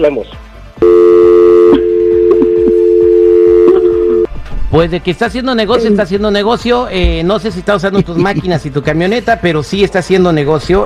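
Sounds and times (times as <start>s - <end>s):
speech: 0.0s - 0.5s, 4.7s - 10.8s
telephone tone after a call is hung up: 0.8s - 4.3s
laughter: 7.8s - 8.6s.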